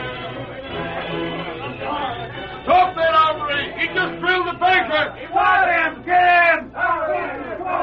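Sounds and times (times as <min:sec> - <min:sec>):
large crowd shouting and yelling in a street: 0:00.7 - 0:07.8
excited individual voices in a crowd: 0:04.3 - 0:07.8.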